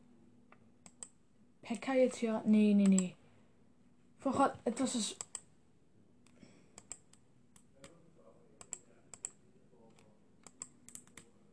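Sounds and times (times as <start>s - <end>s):
faint hum: 0.0s - 11.5s
computer keyboard and mouse clicks while building a deck in a card game: 0.5s - 1.2s, 2.8s - 3.1s, 5.2s - 5.5s, 6.2s - 8.0s, 8.6s - 11.3s
speech: 1.7s - 3.2s, 4.2s - 5.3s.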